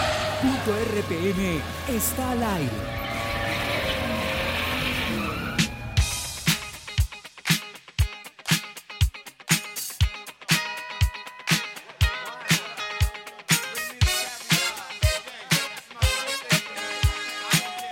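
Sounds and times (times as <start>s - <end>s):
race car engines roaring and revving: 0.0s - 6.1s
race car tires squealing: 0.0s - 6.1s
speech: 0.4s - 3.6s
loud steady pounding beat: 5.6s - 17.9s.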